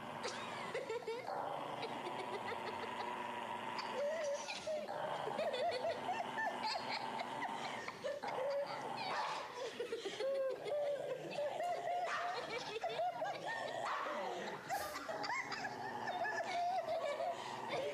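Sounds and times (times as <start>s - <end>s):
people laughing: 0.0s - 17.9s
dog barking and yipping: 8.2s - 9.5s, 12.0s - 12.7s.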